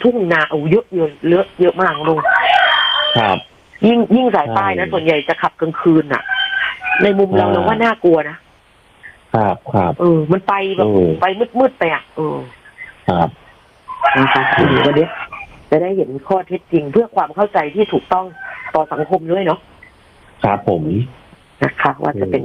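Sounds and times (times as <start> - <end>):
speech: 0.0 - 2.4, 3.1 - 6.4, 7.0 - 8.4, 9.3 - 13.4, 14.0 - 19.7, 20.4 - 22.4
rooster crowing: 1.9 - 3.4, 5.9 - 7.9, 13.9 - 15.6, 18.1 - 19.2.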